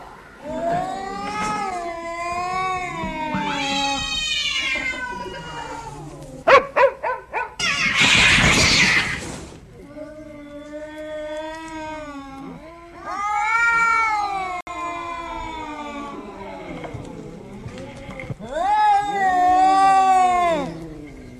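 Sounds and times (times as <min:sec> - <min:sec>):
cats caterwauling at a dog: 0:00.0 - 0:06.5, 0:07.6 - 0:21.3
harsh noisy burst: 0:07.6 - 0:09.7.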